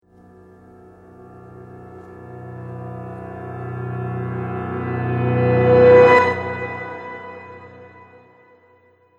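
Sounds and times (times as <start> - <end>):
reversed piano riser: 1.2 - 8.1.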